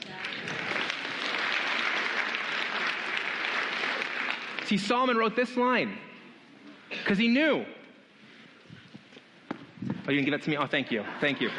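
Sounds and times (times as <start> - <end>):
audience round of applause: 0.0 - 5.2
speech: 4.7 - 6.1, 7.0 - 7.8, 10.1 - 11.5
laughter: 10.7 - 11.5.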